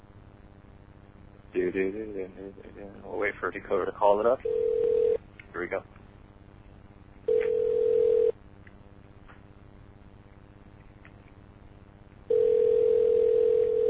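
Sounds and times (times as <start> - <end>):
speech: 1.5 - 6.0
electronic phone ringback tone of an outgoing call: 4.4 - 5.2, 7.3 - 8.3, 12.3 - 13.8.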